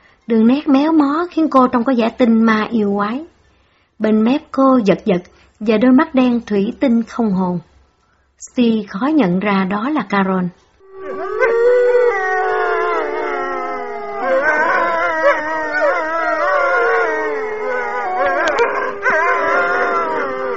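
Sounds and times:
speech: 0.3s - 3.3s, 4.0s - 7.7s, 8.4s - 11.7s
dog howling piteously in a corner of a yard: 10.8s - 20.5s.

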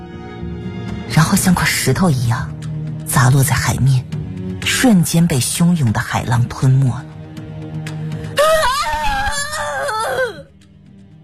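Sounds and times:
speech: 1.2s - 4.1s, 4.8s - 7.1s
man's anguished beast-like howl of grief from a clifftop: 8.4s - 10.5s.

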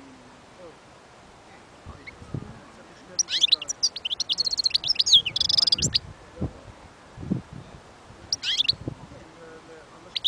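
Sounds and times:
European goldfinch song: 3.1s - 6.0s, 8.3s - 8.8s, 10.1s - 10.2s.

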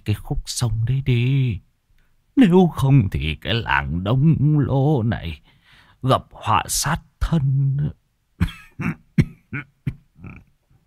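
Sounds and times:
speech: 0.0s - 1.7s, 2.4s - 10.4s
old man coughing up blood: 8.4s - 10.4s.

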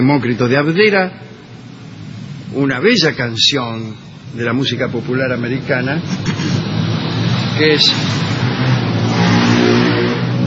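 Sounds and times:
speech: 0.0s - 1.5s, 2.5s - 6.5s, 7.6s - 8.2s
motorcycles passing by from a racetrack: 4.0s - 10.4s.

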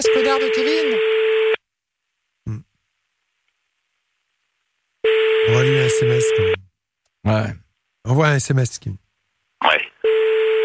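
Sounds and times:
unanswered telephone ringback tone: 0.0s - 1.6s, 5.1s - 6.6s, 10.0s - 10.6s
speech: 0.2s - 1.1s, 7.3s - 9.0s.

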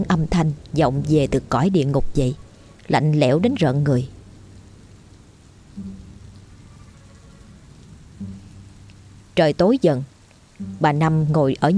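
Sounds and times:
speech: 0.0s - 4.2s, 9.4s - 11.7s
heavy rain with gusting wind: 0.0s - 11.7s
soft low thuds: 5.4s - 6.7s, 7.8s - 9.4s, 10.4s - 11.2s.

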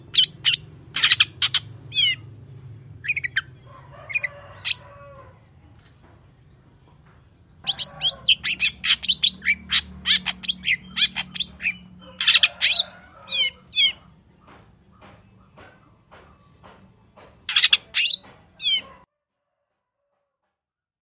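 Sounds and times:
wild long-tailed shrike singing in the morning: 0.0s - 5.1s, 7.5s - 14.2s.

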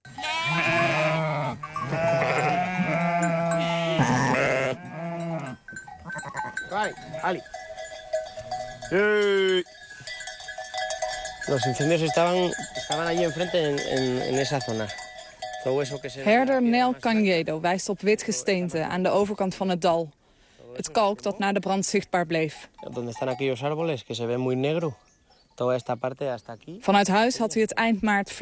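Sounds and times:
cowbells clanking: 0.0s - 19.6s, 21.8s - 24.4s
sheep and goats bleating while grazing in the hills of northern Spain: 0.1s - 17.3s
speech: 6.8s - 7.6s, 8.9s - 9.7s, 11.5s - 15.0s, 15.6s - 20.2s, 20.8s - 28.3s.

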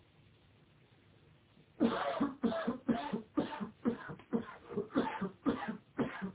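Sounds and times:
person coughing: 1.8s - 6.3s.

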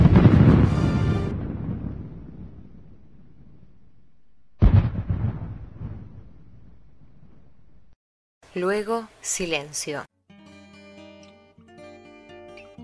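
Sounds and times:
heavy explosions at an airport during a hostage rescue operation: 0.0s - 8.0s
speech: 8.6s - 10.1s.

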